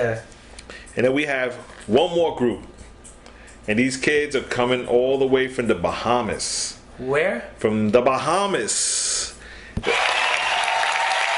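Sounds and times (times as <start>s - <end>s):
speech: 0.0s - 0.4s, 1.0s - 2.7s, 3.7s - 10.0s
audience applause: 9.8s - 11.3s.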